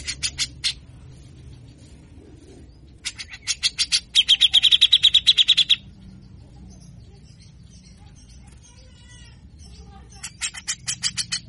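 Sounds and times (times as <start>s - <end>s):
caged Grey-cheeked Bulbul singing harsh buzzy rattles: 0.0s - 11.4s.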